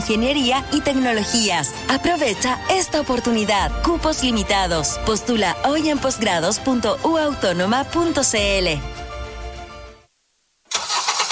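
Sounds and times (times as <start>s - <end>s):
speech: 0.1s - 9.0s
car engine starting: 10.7s - 11.3s.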